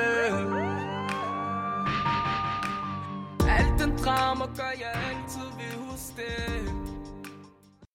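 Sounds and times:
police car siren wailing: 0:00.2 - 0:04.1
speech: 0:04.1 - 0:06.9.

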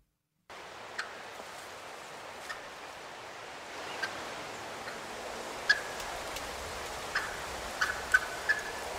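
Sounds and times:
steady outdoor hiss: 0:00.5 - 0:08.9
wild turkey hen squeaky clucking: 0:07.1 - 0:08.8.

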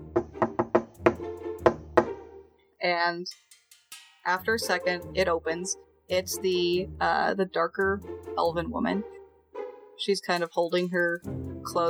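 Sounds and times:
knocking on a door: 0:00.0 - 0:02.2
speech: 0:02.8 - 0:03.5, 0:04.2 - 0:09.2, 0:10.0 - 0:11.8.

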